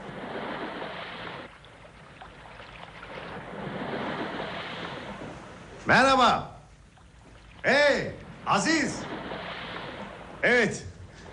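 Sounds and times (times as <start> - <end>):
rushing sea surf: 0.0 - 1.5, 3.1 - 6.3, 7.7 - 11.3
low boat engine rumble over sea waves: 0.0 - 11.3
wind: 0.0 - 11.3
speech: 5.8 - 6.5, 7.6 - 9.1, 10.4 - 10.9.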